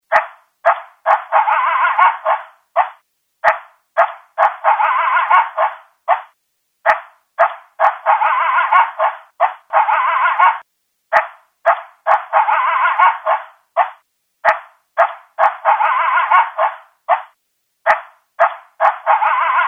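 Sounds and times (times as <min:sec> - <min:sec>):
coyote yips and barks: 0:00.1 - 0:19.6.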